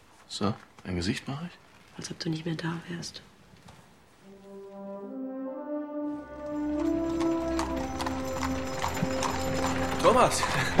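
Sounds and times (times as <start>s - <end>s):
speech: 0.3s - 3.3s, 10.0s - 10.7s
sustained low tones: 4.2s - 8.6s
horse hooves clip-clopping as a horse-drawn carriage arrives: 6.4s - 10.7s.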